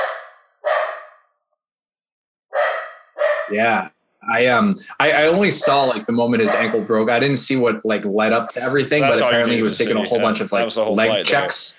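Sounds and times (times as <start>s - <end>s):
dog barking: 0.0s - 1.4s, 2.5s - 3.6s, 5.6s - 7.0s
speech: 3.5s - 11.7s.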